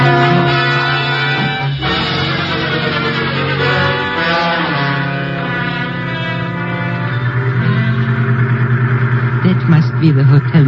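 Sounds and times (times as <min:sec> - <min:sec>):
truck engine rumbling and revving while driving: 0:00.0 - 0:10.6
taxi cab engine rumbling and revving while driving: 0:05.2 - 0:10.6
speech: 0:10.0 - 0:10.6.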